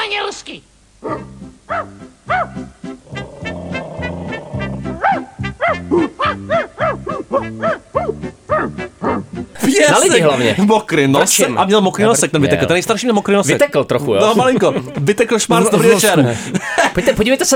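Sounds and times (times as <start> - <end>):
speech: 0.4 - 1.9, 9.8 - 17.5
people imitating dog barks and yips: 1.0 - 10.4
laughter: 9.6 - 10.7, 14.1 - 17.3.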